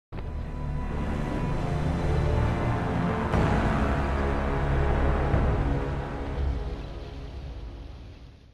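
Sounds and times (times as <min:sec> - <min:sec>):
death music: 0:00.2 - 0:08.3.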